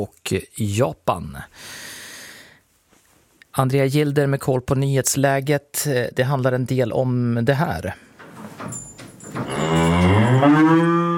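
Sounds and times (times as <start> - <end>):
speech: 0.0 - 2.0, 3.6 - 8.8
cow mooing: 9.4 - 11.1.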